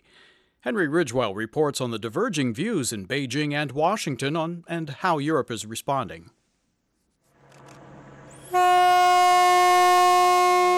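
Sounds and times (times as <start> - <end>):
speech: 0.6 - 6.4, 8.5 - 8.9
freight train horn blaring: 8.1 - 10.7.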